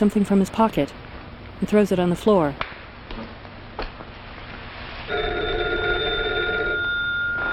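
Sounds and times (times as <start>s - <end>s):
speech: 0.0s - 2.6s
old-fashioned telephone bell ringing: 5.1s - 7.5s.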